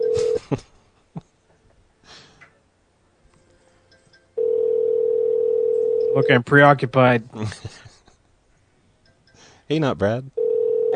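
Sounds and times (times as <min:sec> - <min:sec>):
telephone ringing with a loud electronic tone: 0:00.0 - 0:00.4, 0:04.4 - 0:06.5, 0:10.4 - 0:10.9
speech: 0:06.2 - 0:07.9, 0:09.7 - 0:10.4.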